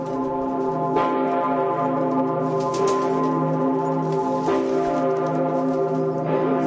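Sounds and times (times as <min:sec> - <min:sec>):
huge church bell tolling: 0:00.0 - 0:06.6.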